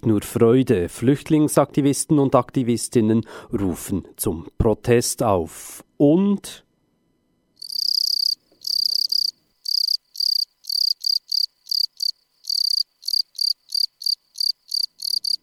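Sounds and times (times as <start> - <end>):
speech: 0.0 - 6.6
field cricket chirping: 7.6 - 15.4.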